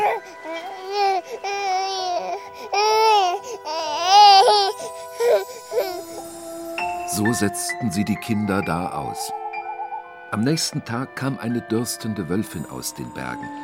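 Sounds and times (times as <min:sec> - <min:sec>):
baby crying: 0:00.0 - 0:07.4
speech: 0:07.3 - 0:09.4, 0:10.3 - 0:13.6.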